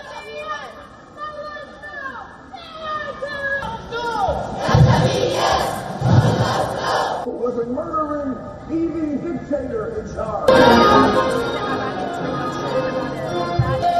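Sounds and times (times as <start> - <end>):
crowd of protesters shouting and chanting outside United Nations headquarters in New York: 0.0 - 7.3, 10.5 - 13.9
speech: 7.3 - 13.9.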